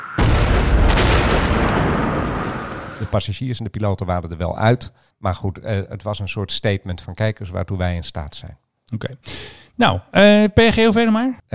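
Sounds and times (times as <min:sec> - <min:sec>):
loud explosion with heavy low-end boom and crackling roar: 0:00.0 - 0:03.1
speech: 0:03.0 - 0:11.5.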